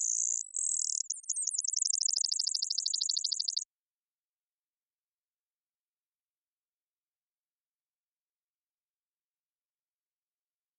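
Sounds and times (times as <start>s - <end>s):
Brewer's sparrow males singing in a subalpine sagebrush meadow: 0.0s - 3.6s.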